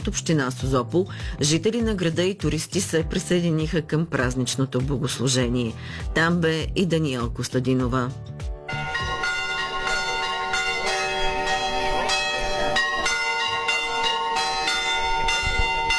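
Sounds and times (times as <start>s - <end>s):
speech: 0.0s - 8.5s
church bells pealing: 8.7s - 15.9s.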